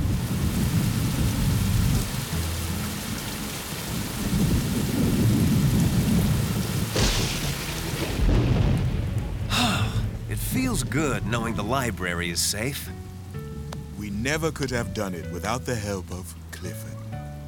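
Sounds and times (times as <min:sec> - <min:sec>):
deep rolling thunder: 0:00.0 - 0:02.3, 0:03.9 - 0:12.4
steady downpour of rain: 0:00.0 - 0:17.4
sharp crack of thunder: 0:04.2 - 0:12.0
speech: 0:10.7 - 0:13.0, 0:14.2 - 0:16.9.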